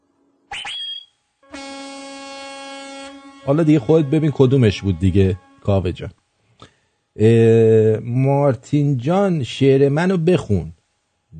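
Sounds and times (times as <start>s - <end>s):
car horn honking as a greeting: 1.5s - 6.0s
speech: 3.4s - 6.2s, 7.2s - 11.3s.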